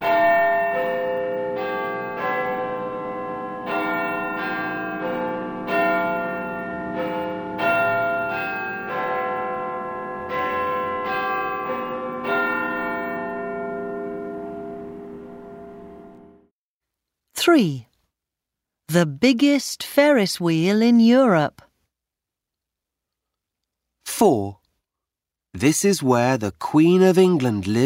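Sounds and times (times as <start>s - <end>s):
large clock tower bells chiming: 0.0s - 16.5s
speech: 17.5s - 17.8s, 19.0s - 21.6s, 24.2s - 24.6s, 25.6s - 27.8s.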